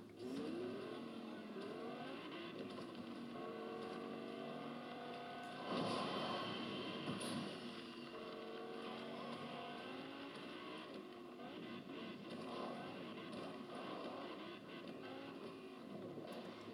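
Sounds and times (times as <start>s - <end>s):
car engine driving and revving: 0.0s - 16.7s.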